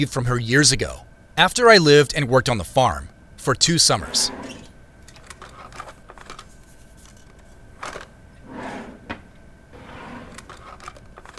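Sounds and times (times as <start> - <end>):
speech: 0.0 - 4.6
desk drawers sliding open and shut: 4.1 - 4.7, 7.8 - 11.3.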